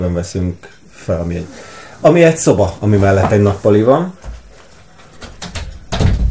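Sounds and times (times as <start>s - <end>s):
speech: 0.0s - 4.3s
room door creaking: 4.2s - 6.3s
room door pushed shut with a firm low thud: 5.2s - 6.3s.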